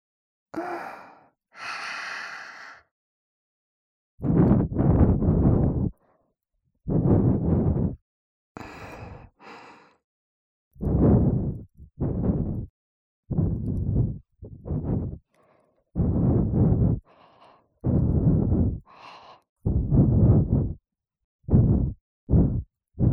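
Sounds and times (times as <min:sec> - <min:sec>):
gentle breath blown softly out in airy puffs: 0:04.2 - 0:06.0, 0:06.9 - 0:08.0, 0:08.6 - 0:10.0, 0:10.8 - 0:12.7, 0:13.3 - 0:20.8, 0:21.5 - 0:23.1.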